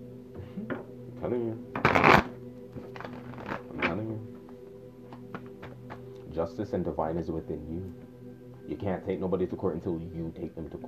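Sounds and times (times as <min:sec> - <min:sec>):
steady tones: 0:00.0 - 0:10.8
speech: 0:01.2 - 0:01.7, 0:06.4 - 0:08.1, 0:08.7 - 0:10.8
deck of tarot cards being cut and shuffled: 0:01.8 - 0:03.9.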